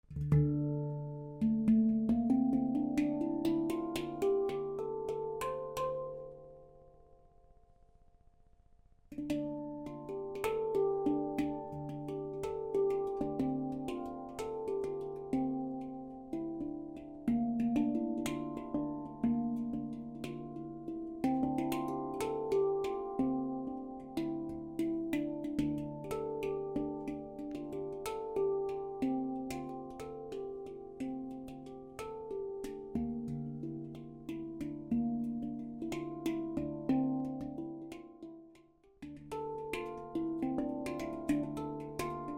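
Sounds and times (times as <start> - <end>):
low handpan in D Kurd tuning at 440 Hz: 0.0 - 7.2, 9.1 - 42.3.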